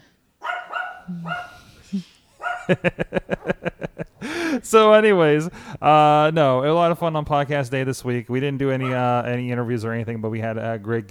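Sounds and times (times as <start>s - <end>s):
dog barking: 0.4s - 1.7s, 2.4s - 3.6s, 8.8s - 9.1s
speech: 1.1s - 3.2s, 4.6s - 11.1s
laughter: 1.2s - 5.5s.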